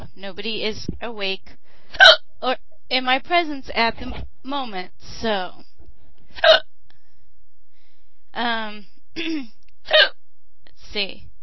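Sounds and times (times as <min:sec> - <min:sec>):
speech: 0:00.2 - 0:05.6, 0:06.4 - 0:06.6, 0:08.4 - 0:10.1, 0:10.9 - 0:11.3
hiccups: 0:02.0 - 0:02.3, 0:06.4 - 0:06.7, 0:09.2 - 0:10.2.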